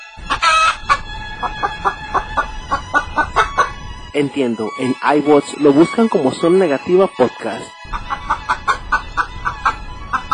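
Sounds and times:
chicken clucking: 0.0s - 4.0s, 4.6s - 10.3s
chicken squawk: 0.2s - 3.8s, 7.8s - 10.3s
speech: 1.4s - 2.0s, 4.2s - 8.0s.

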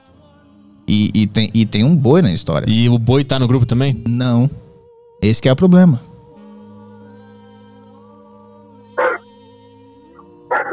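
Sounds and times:
speech: 1.0s - 4.6s, 5.2s - 6.1s
dogs barking: 9.0s - 9.2s, 10.5s - 10.7s.

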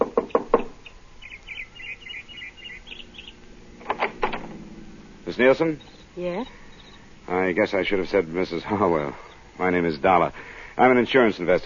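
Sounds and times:
knocking on the door of a small house: 0.0s - 0.7s
faint high chirps: 0.3s - 3.8s, 4.5s - 11.1s
speech: 5.4s - 6.6s, 7.3s - 11.6s.

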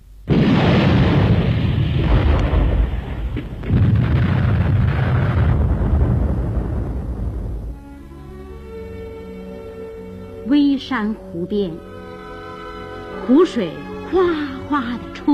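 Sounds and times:
enemy artillery shells exploding on an empty battlefield position: 0.2s - 7.8s
speech: 10.9s - 11.9s, 13.3s - 15.3s.

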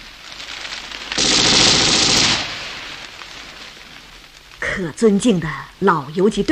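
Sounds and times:
machine gun firing a sustained burst from a mosque bell tower in Sarajevo: 1.2s - 3.0s
speech: 4.8s - 6.5s.

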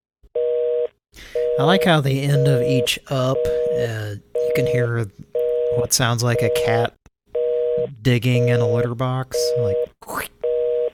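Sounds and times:
telephone busy signal: 0.5s - 4.9s, 5.4s - 6.8s, 7.4s - 10.9s
speech: 1.6s - 7.0s, 7.8s - 10.3s.

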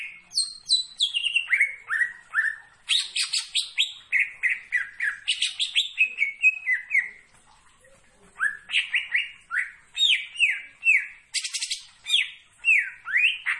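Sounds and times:
leafbird song of clear falling whistled notes: 0.0s - 7.2s, 8.4s - 13.5s.

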